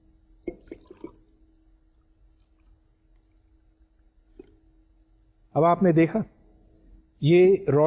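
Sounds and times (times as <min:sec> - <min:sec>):
faint steady hum: 0:00.0 - 0:07.8
water poured into a glass: 0:00.4 - 0:01.4
water drips: 0:00.4 - 0:04.6
speech: 0:05.6 - 0:06.4, 0:07.2 - 0:07.8.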